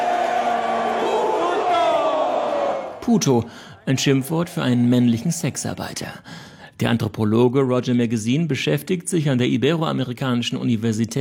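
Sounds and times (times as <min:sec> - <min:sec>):
football fans shouting a collective taunt at a goal kick: 0:00.0 - 0:03.0
speech: 0:03.1 - 0:11.1.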